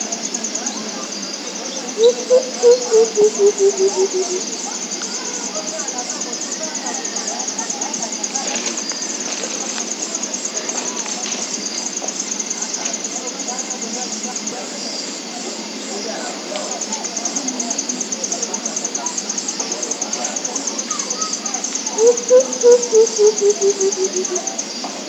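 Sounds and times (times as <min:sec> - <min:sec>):
Senegal coucal calling: 0:01.9 - 0:04.7, 0:20.9 - 0:24.7.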